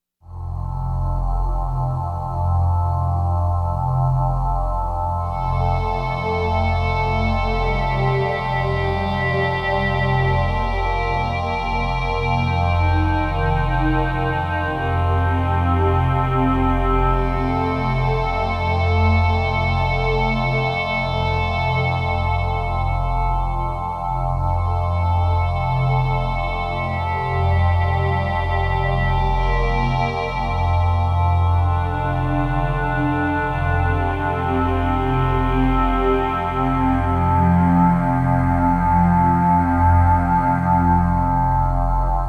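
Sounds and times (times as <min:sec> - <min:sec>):
Kawai K1 synthesizer fx pad: 0:00.3 - 0:42.2.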